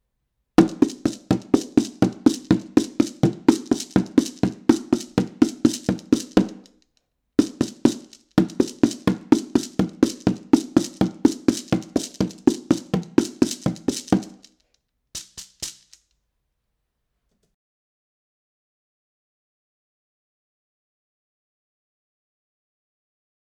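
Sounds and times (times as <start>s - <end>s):
percussion recorded with AEA R44C microphone: 0.6s - 6.8s, 7.4s - 16.1s.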